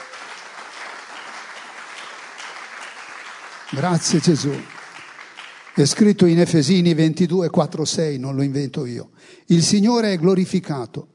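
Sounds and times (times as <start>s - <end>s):
crowd applauding: 0.0s - 7.0s
speech: 3.7s - 4.8s, 5.8s - 11.1s.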